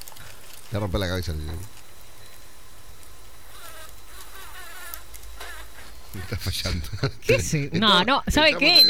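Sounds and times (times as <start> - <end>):
speech: 0.7 - 1.8, 6.2 - 8.8
yellow manganga bee buzzing: 3.3 - 6.7.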